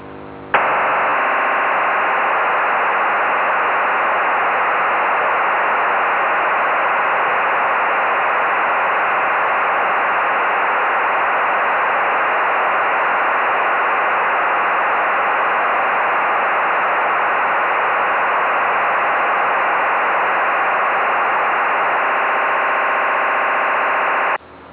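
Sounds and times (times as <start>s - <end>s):
2400 Bd serial data modem burst: 0.6s - 24.4s.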